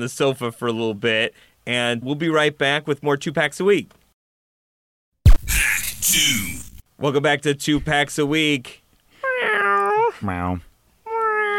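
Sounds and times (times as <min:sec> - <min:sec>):
speech: 0:00.0 - 0:04.0, 0:06.0 - 0:08.8, 0:10.2 - 0:10.7
person's voice imitating cat meows: 0:09.2 - 0:10.2, 0:11.1 - 0:11.5.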